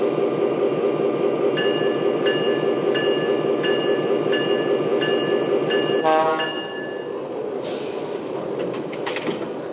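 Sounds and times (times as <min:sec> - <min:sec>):
passenger train rumbling with rhythmic clacking: 0:00.0 - 0:09.7
passenger train brake squeal: 0:01.6 - 0:08.3.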